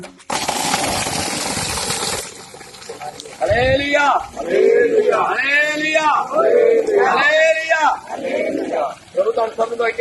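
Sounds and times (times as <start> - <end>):
water gushing from a borewell pump: 0.0 - 4.5, 7.2 - 9.9
speech: 3.6 - 9.9.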